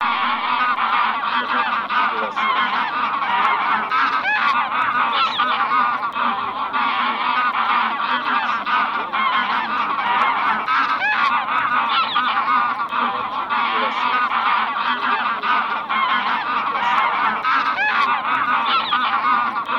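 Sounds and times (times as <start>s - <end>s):
bean goose flock honking and cackling: 0.0s - 19.7s.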